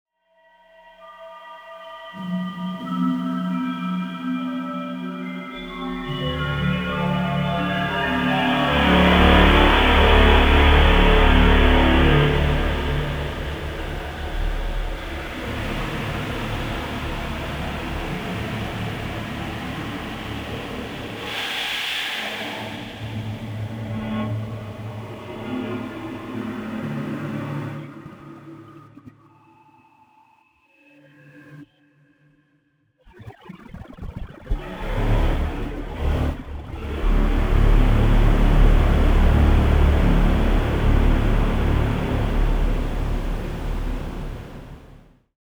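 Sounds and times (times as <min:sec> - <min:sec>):
space drone: 0:02.8 - 0:28.1, 0:34.5 - 0:45.1.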